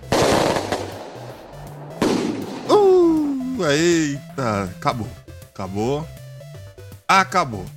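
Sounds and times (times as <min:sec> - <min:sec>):
booming firework blasts from a shot battery with outdoor echo: 0:00.0 - 0:03.2
speech: 0:03.6 - 0:06.2, 0:07.1 - 0:07.7.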